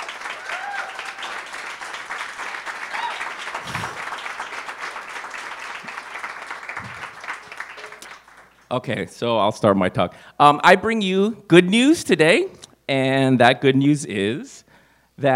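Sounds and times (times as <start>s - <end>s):
audience at a specialty coffee talk applauding a speaker: 0.0s - 8.7s
speech: 8.7s - 14.6s, 15.2s - 15.3s.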